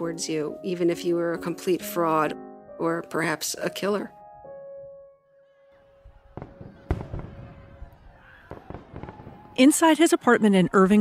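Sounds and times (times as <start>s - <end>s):
speech: 0.0s - 4.2s, 9.6s - 11.0s
fireworks exploding: 6.0s - 10.2s.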